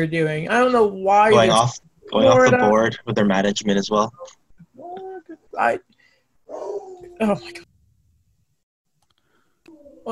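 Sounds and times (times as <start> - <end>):
speech: 0.0 - 4.4, 5.6 - 5.9, 6.5 - 7.7
dog barking: 6.5 - 7.0
dog making whiny howl-like vocal tones: 6.5 - 7.6.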